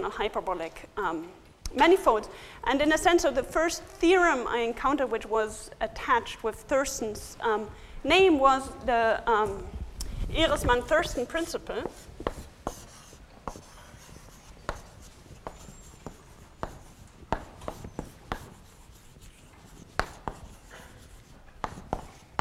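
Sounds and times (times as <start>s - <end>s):
speech: 0.0s - 12.1s
writing implement scratching and tapping on a board: 11.4s - 22.3s.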